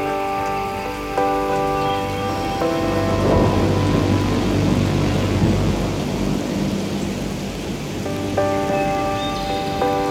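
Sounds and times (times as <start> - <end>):
rain falling in woodland: 0.0 - 10.0
low rumble: 2.4 - 8.0.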